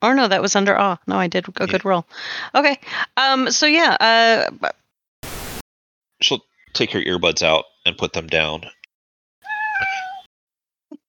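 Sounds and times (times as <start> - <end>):
speech: 0.0 - 4.8, 6.2 - 8.8
cat meowing: 9.4 - 10.3.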